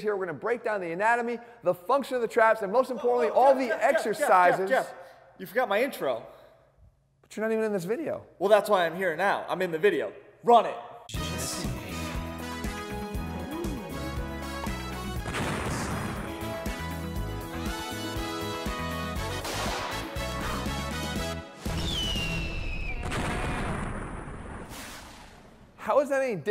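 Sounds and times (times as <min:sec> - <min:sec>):
speech: 0:00.0 - 0:06.4, 0:07.3 - 0:11.2, 0:26.1 - 0:26.4
laughter: 0:03.0 - 0:05.0
dense driving music track: 0:11.1 - 0:21.8
crashing booms: 0:15.1 - 0:16.8, 0:21.7 - 0:25.7
explosions in a video intro: 0:15.2 - 0:16.7, 0:19.4 - 0:20.1, 0:21.6 - 0:25.8.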